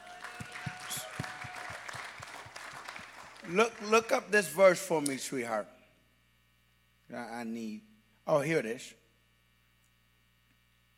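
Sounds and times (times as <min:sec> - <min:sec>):
large crowd applauding: 0:00.0 - 0:04.5
speech: 0:03.5 - 0:05.8, 0:07.1 - 0:09.0.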